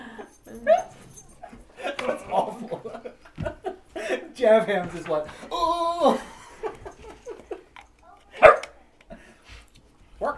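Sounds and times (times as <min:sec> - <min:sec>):
laughter: 0:01.4 - 0:04.4, 0:05.0 - 0:07.7
speech: 0:04.4 - 0:06.3
dog barking indoors: 0:08.3 - 0:08.8.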